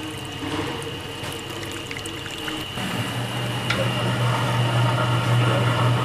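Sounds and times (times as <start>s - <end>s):
water pouring automatically into a dough-kneading machine: 0.0s - 4.1s
dough-kneading machine humming and whirring: 0.0s - 6.0s.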